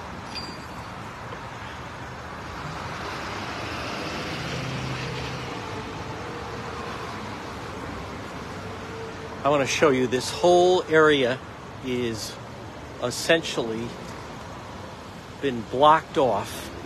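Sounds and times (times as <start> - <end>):
traffic jam of idling and slowly moving cars and trucks: 0.0 - 16.8
speech: 9.4 - 12.4, 13.0 - 14.1, 15.4 - 16.7.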